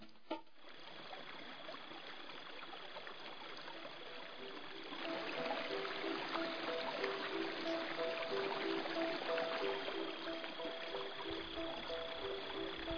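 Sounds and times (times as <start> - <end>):
stream of flowing water: 0.5 - 12.9
faint sustained tones: 3.3 - 12.9.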